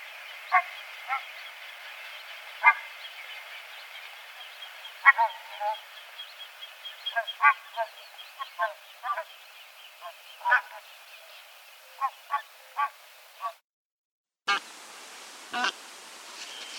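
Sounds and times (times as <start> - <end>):
bean goose Anser fabalis honking: 0.0 - 1.3, 2.6 - 2.9, 5.0 - 5.8, 7.1 - 9.3, 10.4 - 10.8, 15.6 - 15.8
steady background hiss: 0.0 - 13.5, 14.5 - 16.7.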